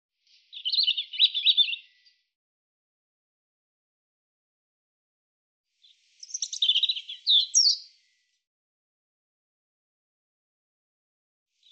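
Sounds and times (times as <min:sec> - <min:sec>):
European robin singing: 0:00.4 - 0:02.2, 0:05.8 - 0:08.1.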